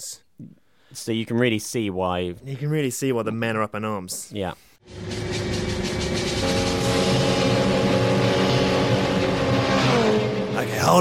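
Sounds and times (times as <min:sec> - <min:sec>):
speech: 0:00.0 - 0:05.1
cars driving: 0:05.4 - 0:10.9.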